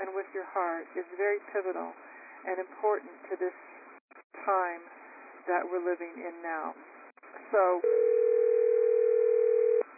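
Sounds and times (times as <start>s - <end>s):
speech: 0.2s - 6.9s, 7.5s - 8.2s
steady telephone tone on a conference call line: 7.8s - 9.9s.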